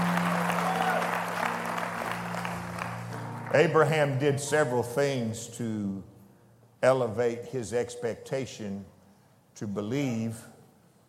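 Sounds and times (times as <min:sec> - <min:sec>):
audience applause filling a large room: 0:00.0 - 0:03.6
speech: 0:03.5 - 0:06.1, 0:06.8 - 0:08.9, 0:09.6 - 0:10.5.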